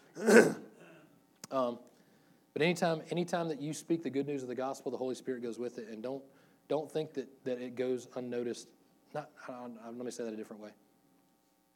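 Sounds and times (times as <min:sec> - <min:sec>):
raspy throat clearing: 0:00.1 - 0:01.1
speech: 0:02.6 - 0:10.9.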